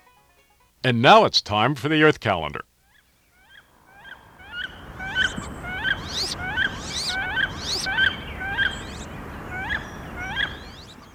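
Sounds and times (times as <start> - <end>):
speech: 0.8 - 2.7
wood duck calling: 1.1 - 11.1.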